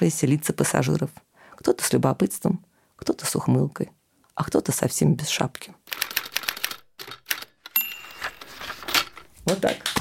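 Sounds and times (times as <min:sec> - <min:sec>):
speech: 0:00.0 - 0:06.2, 0:09.5 - 0:09.9
sharp mechanical clicks and clatter: 0:05.9 - 0:09.3.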